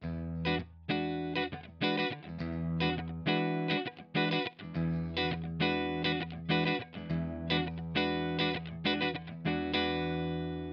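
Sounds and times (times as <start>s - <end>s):
clean electric guitar: 0.0s - 10.7s.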